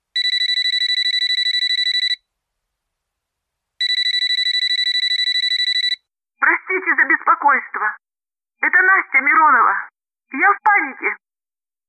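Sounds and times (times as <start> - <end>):
telephone ringing with a high electronic trill: 0.2 - 2.2, 3.8 - 6.0
speech: 6.8 - 8.0, 8.6 - 11.2.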